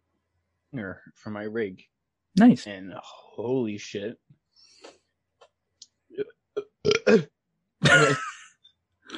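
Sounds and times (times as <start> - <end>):
speech: 0.7 - 5.0, 6.2 - 8.3
loud drawn-out burp: 6.1 - 8.4
gulping noises: 6.2 - 7.3.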